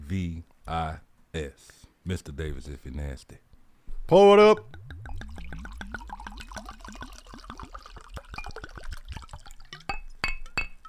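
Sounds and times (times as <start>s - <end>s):
speech: 0.1s - 3.4s, 4.1s - 5.8s
drink glugging into a glass: 4.6s - 10.0s
bright glass clinks: 9.7s - 10.8s.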